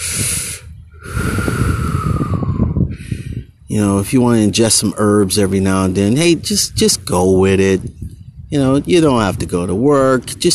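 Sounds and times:
person breathing in deeply: 0.0s - 3.5s
speech: 3.8s - 10.5s.

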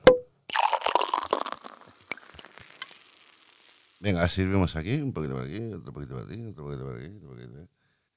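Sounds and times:
bottle opening pop: 0.0s - 3.9s
crackling fizzy hiss from opened bottle: 0.5s - 4.8s
speech: 4.0s - 7.8s.

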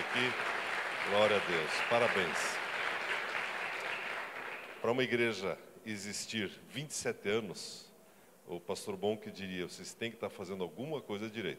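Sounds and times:
audience applauding: 0.0s - 5.0s
speech: 0.2s - 2.6s, 4.8s - 7.9s, 8.5s - 11.5s.

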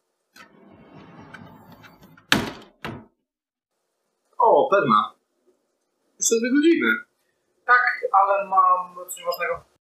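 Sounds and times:
door creaking and scraping as it swings: 0.3s - 3.2s
speech: 4.7s - 5.2s, 6.2s - 7.1s, 7.7s - 9.7s.

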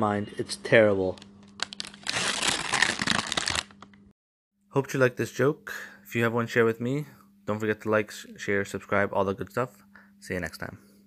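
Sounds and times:
speech: 0.0s - 1.3s, 4.7s - 10.9s
paper crumpling: 1.4s - 3.9s.

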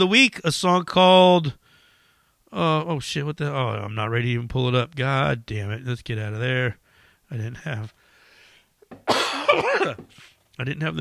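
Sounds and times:
speech: 0.0s - 1.6s, 2.5s - 8.0s, 9.0s - 10.9s
short harsh cough: 9.0s - 10.4s.

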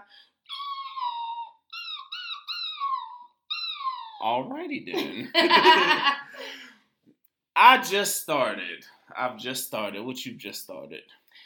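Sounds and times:
person imitating a dog's crying whimper with nasal whines: 0.0s - 4.4s
speech: 4.2s - 6.6s, 7.6s - 11.2s
laughter: 5.0s - 6.5s.

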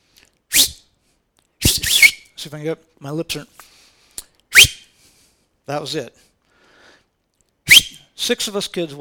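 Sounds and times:
person whistling a signal call: 1.6s - 2.3s, 7.7s - 8.0s
speech: 2.4s - 3.7s, 5.7s - 6.3s, 8.3s - 8.9s.

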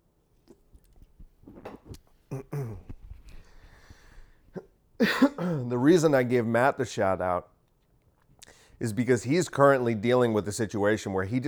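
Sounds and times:
person sipping and swallowing water: 0.5s - 3.6s
brief throaty noise: 1.4s - 3.9s
speech: 5.0s - 7.5s, 8.8s - 11.4s.

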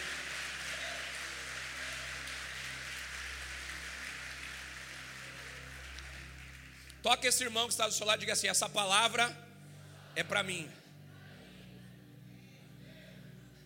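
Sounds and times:
large crowd applauding: 0.0s - 7.8s
speech: 7.0s - 9.4s, 10.2s - 10.8s.

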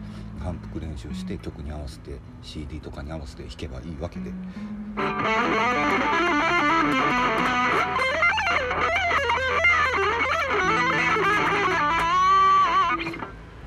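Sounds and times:
speech: 0.4s - 8.0s
distorted electric guitar playing a bending lead phrase: 5.0s - 13.6s.

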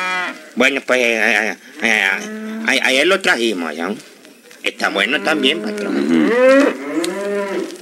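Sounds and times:
cattle mooing: 0.0s - 0.4s, 1.8s - 3.1s, 4.8s - 7.7s
speech: 0.6s - 6.8s.

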